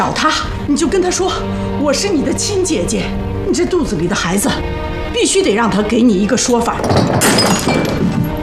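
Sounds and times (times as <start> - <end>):
speech: 0.0 - 8.2
bright ringing of scattering pieces: 6.8 - 8.2
something dropping and shattering: 6.8 - 8.3.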